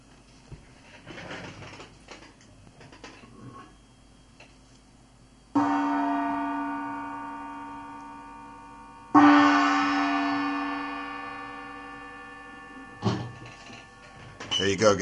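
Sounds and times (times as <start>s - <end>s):
small oriental gong struck lightly: 5.6s - 14.8s
speech: 14.6s - 15.0s.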